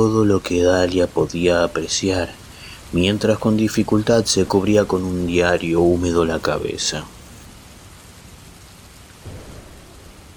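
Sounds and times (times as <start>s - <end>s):
speech: 0.0s - 7.2s
heavy rain pouring steadily: 0.0s - 10.3s
low rumble of thunder: 9.1s - 10.3s.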